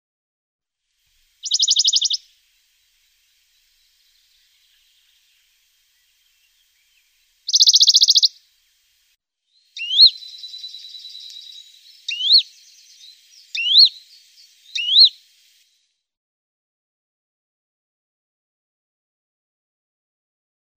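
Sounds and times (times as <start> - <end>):
Western Bonelli's warbler Phylloscopus bonelli singing: 1.4 - 8.4, 9.6 - 15.2.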